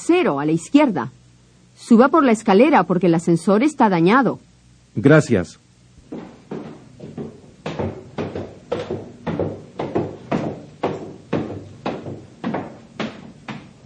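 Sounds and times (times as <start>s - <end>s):
speech: 0.1s - 1.2s, 1.8s - 6.2s
wooden thumps like knocking on a door: 6.1s - 13.8s.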